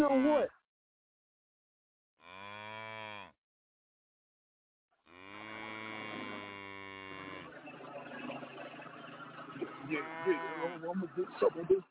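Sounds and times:
speech: 0.1 - 0.6, 10.0 - 11.8
cow mooing: 2.2 - 3.4, 5.1 - 7.6, 9.6 - 11.0
laughter: 7.5 - 11.8.

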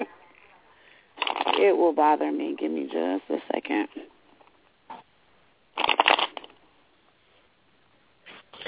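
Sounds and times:
tarot cards being shuffled: 1.2 - 1.6, 5.7 - 6.5
speech: 1.9 - 4.0.

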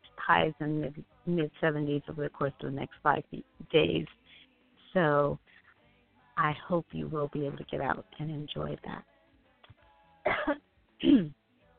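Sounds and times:
speech: 0.3 - 4.2, 4.9 - 5.5, 6.4 - 9.1, 10.2 - 11.4
person coughing: 10.3 - 11.4.

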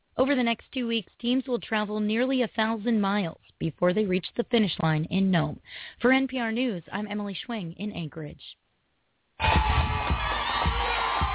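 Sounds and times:
speech: 0.2 - 8.6, 9.4 - 10.3
crowd of onlookers cheering and whooping: 9.4 - 11.3.

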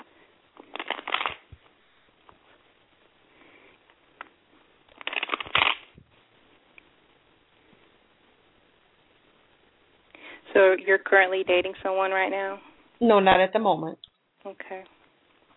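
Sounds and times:
tarot cards being shuffled: 0.6 - 1.7, 4.9 - 5.9
speech: 10.7 - 15.0.

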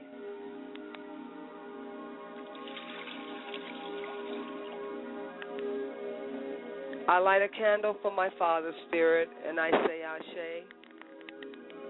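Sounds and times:
low constant hum: 0.0 - 11.2
liquid poured out as a libation toward the west: 2.4 - 5.0
speech: 7.1 - 10.8.

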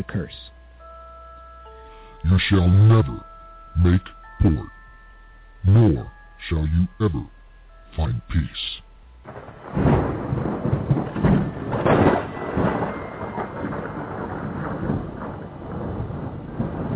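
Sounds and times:
speech: 0.0 - 0.4, 2.2 - 4.8, 5.6 - 7.4, 8.0 - 8.6
deep rumbles of thunder in a storm at sea: 9.2 - 16.9
gusting wind in a storm at sea around a ship: 9.2 - 16.9.

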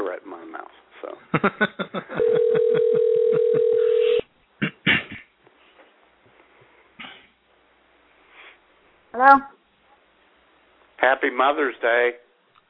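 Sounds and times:
low noise: 0.0 - 12.6
speech: 1.3 - 1.8, 11.3 - 12.2
steady telephone line tone: 2.2 - 4.2.

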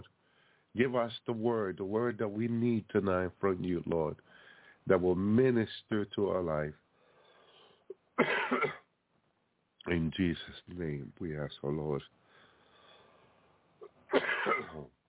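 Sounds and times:
speech: 0.8 - 6.8, 8.2 - 8.8, 9.8 - 12.2, 14.1 - 15.0
person coughing harshly: 8.2 - 8.9, 13.8 - 14.9.

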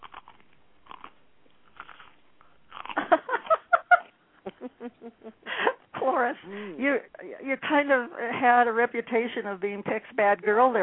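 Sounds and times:
person eating and chewing crunchy food: 0.0 - 4.1
speech: 6.5 - 10.8.

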